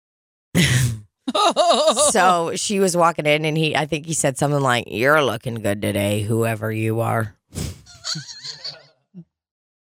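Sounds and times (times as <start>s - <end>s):
brief vocal sound: 0.6s - 1.0s
person yawning: 0.6s - 1.0s
speech: 0.6s - 8.4s
laughter: 1.3s - 2.5s, 7.9s - 8.8s.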